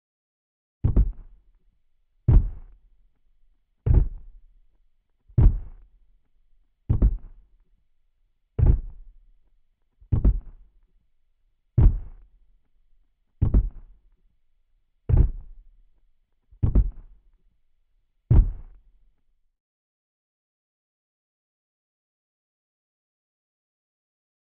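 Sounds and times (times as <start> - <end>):
giant monster footsteps: 0.8 - 1.4, 2.3 - 2.8, 3.9 - 4.4, 5.4 - 5.8, 6.9 - 7.3, 8.6 - 9.0, 10.1 - 10.6, 11.8 - 12.2, 13.4 - 13.8, 15.1 - 15.5, 16.6 - 17.0, 18.3 - 18.8.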